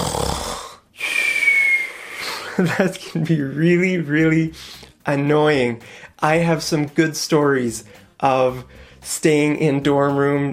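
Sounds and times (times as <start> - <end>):
person imitating snoring: 0.0 - 2.1
laughter: 2.2 - 3.4
speech: 2.6 - 10.5.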